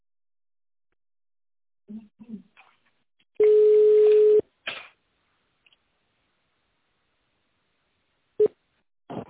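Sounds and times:
telephone ringing tone while a call is transferred: 3.4s - 4.4s.

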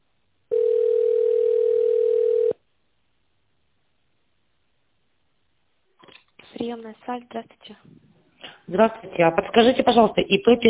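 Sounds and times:
steady mid-pitched telephone beep during call transfer to an operator: 0.5s - 2.6s
speech: 6.6s - 8.0s, 8.7s - 10.6s.

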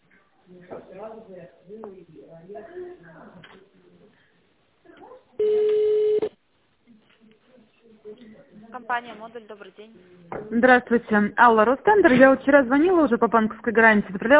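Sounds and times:
speech: 0.5s - 3.8s, 8.1s - 14.3s
telephone ringing tone as a company call is transferred: 5.4s - 6.3s.

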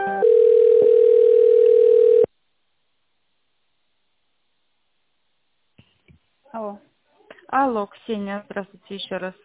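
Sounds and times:
electronic telephone tones while a call is transferred: 0.2s - 2.3s
speech: 7.7s - 9.4s.

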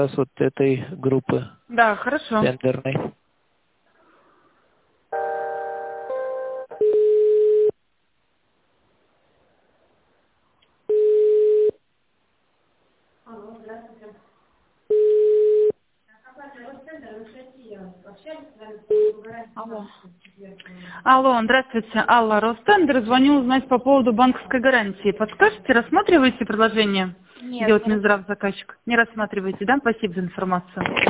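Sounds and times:
speech: 0.0s - 3.2s, 18.2s - 31.0s
telephone line tones while a call is being transferred: 6.7s - 7.7s, 10.9s - 11.8s, 14.9s - 15.8s, 18.9s - 19.2s
people talking on a telephone line: 18.9s - 19.4s.

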